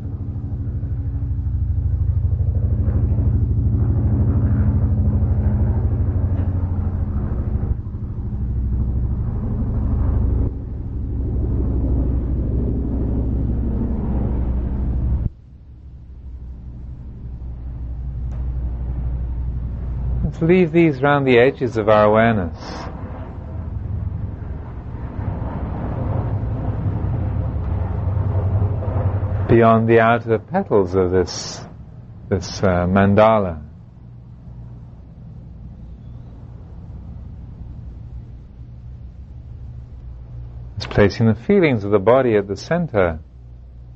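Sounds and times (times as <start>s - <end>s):
street traffic rumble of passing vehicles and engines: 0.0s - 43.9s
speech: 20.4s - 22.9s, 29.5s - 31.7s, 32.3s - 33.7s, 41.0s - 43.3s.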